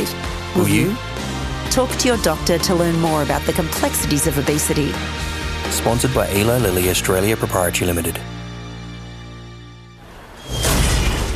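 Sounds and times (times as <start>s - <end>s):
speech: 0.6s - 1.1s, 1.8s - 8.4s
space capsule crashing through a roof and carport: 10.1s - 11.3s.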